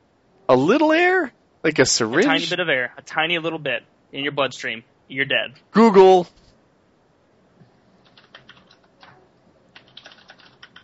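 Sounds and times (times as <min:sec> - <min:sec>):
speech: 0:00.5 - 0:06.4
several people typing on keyboards: 0:08.0 - 0:10.8.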